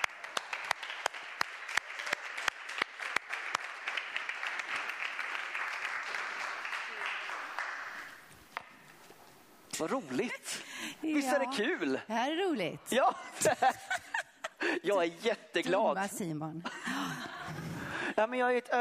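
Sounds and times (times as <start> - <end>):
audience applause: 0.0 - 8.3
speech: 9.8 - 13.9, 14.8 - 16.9, 18.2 - 18.8
laughter: 13.0 - 14.9, 16.7 - 18.2.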